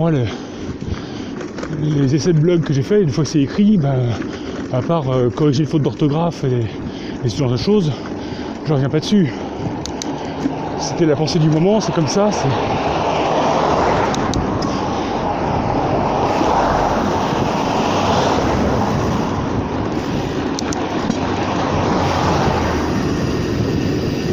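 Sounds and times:
speech: 0.0 - 0.9, 1.5 - 9.4, 10.8 - 13.0
car accelerating while driving: 10.5 - 24.2.

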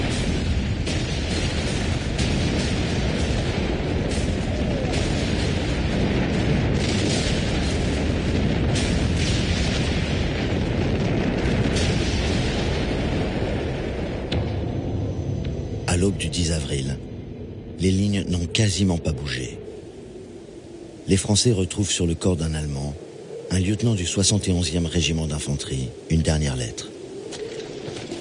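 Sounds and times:
World War I artillery fire during a German attack: 0.0 - 15.7
speech: 16.2 - 17.0, 17.8 - 19.6, 21.1 - 27.0.

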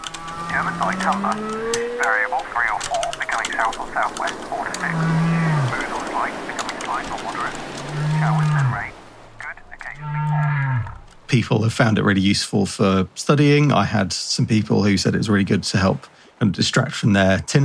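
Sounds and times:
steady rain-like hiss from an ambient noise generator: 0.0 - 17.6
higher warbling whale calls: 0.1 - 11.1
speech: 0.8 - 5.3, 6.2 - 8.9, 11.4 - 17.6
low drawn-out whale moans: 4.7 - 5.9, 7.8 - 8.8, 10.0 - 11.1.

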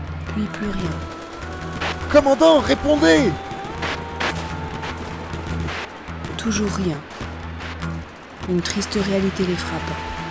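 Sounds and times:
steady low mechanical drone: 0.0 - 10.2
speech: 0.4 - 1.2, 2.1 - 3.5, 6.4 - 7.2, 8.5 - 10.1
gunshots: 0.9 - 7.9.

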